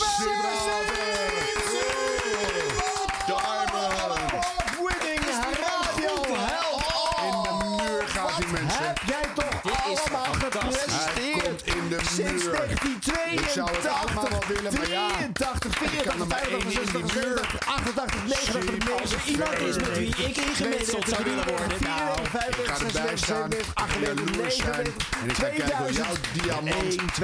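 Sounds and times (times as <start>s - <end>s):
cheering and whooping voices: 0.0s - 8.4s
studio audience crowd clapping: 0.0s - 27.2s
speech: 13.5s - 27.2s.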